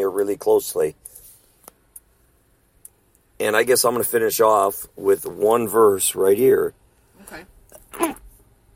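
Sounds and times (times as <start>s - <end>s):
speech: 0.2s - 1.1s, 3.4s - 8.2s
sneeze: 7.2s - 8.4s.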